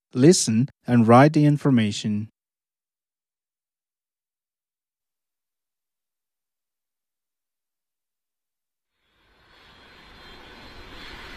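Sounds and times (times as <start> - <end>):
speech: 0.1 - 2.4
airplane engines roaring at an airport in Portugal: 9.4 - 11.3.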